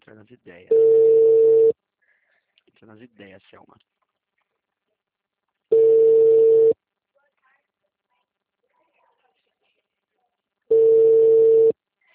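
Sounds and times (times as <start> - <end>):
speech: 0.1 - 1.7, 2.8 - 4.0
telephone ringback tone while a call is being placed: 0.7 - 1.8, 5.7 - 6.8, 10.7 - 11.8.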